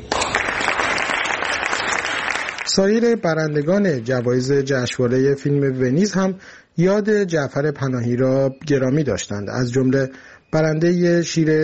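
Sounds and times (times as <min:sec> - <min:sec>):
audience applause at a film festival awards event: 0:00.0 - 0:02.9
speech: 0:02.8 - 0:11.6.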